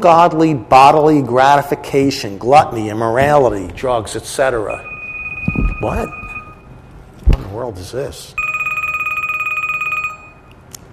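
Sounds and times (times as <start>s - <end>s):
speech: 0.0s - 4.9s, 5.8s - 6.2s, 7.6s - 8.4s
cell phone ringing with a warbling electronic trill: 4.7s - 6.7s, 8.4s - 10.5s.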